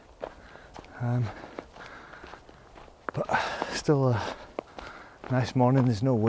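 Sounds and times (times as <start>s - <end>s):
footsteps on fresh untrodden snow on a path in the Cairngorms: 0.0s - 6.2s
speech: 1.0s - 1.4s, 3.2s - 4.4s, 5.3s - 6.2s.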